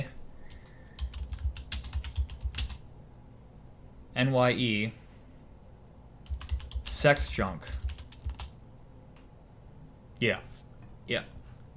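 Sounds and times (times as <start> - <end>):
typing on a computer keyboard: 0.5 - 2.8, 6.2 - 8.6
speech: 4.2 - 5.0, 7.0 - 7.8, 10.2 - 10.5, 11.1 - 11.3.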